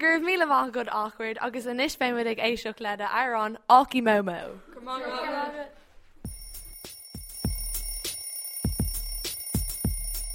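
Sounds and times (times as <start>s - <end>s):
speech: 0.0s - 5.8s
mechanical alarm clock bell ringing: 6.3s - 10.3s.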